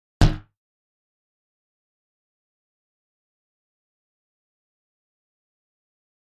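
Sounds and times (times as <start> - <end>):
rubbery ball boings: 0.2 - 0.4.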